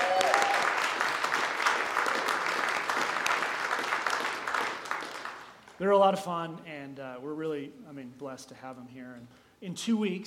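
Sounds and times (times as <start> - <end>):
crowd of people applauding: 0.0 - 5.6
speech: 5.8 - 10.2.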